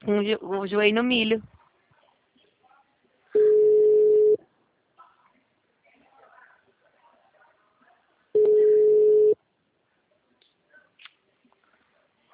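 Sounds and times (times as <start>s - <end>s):
speech: 0.0s - 1.6s
ringback tone of an unanswered outgoing phone call: 3.4s - 4.4s, 8.4s - 9.4s.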